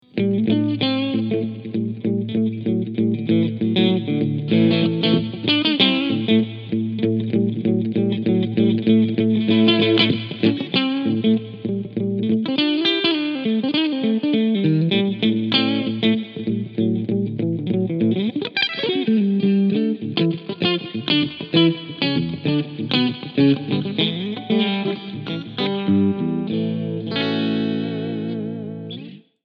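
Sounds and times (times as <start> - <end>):
DV Mark DV Little FG 250 guitar amplifier clean sound: 0.0 - 29.3.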